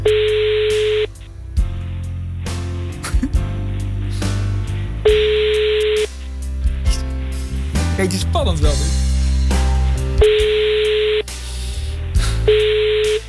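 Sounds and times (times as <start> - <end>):
low constant hum: 0.0 - 13.2
ringback tone of a phone call to a mobile number: 0.1 - 1.1, 5.2 - 6.1, 10.3 - 11.2, 12.6 - 13.2
speech: 8.0 - 9.0.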